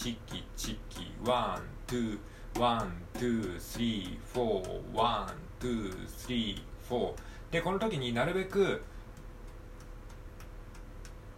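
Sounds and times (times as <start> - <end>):
speech: 0.0 - 8.9
soft hiss: 0.0 - 11.3
soft taps on a mini cajon: 0.0 - 11.3.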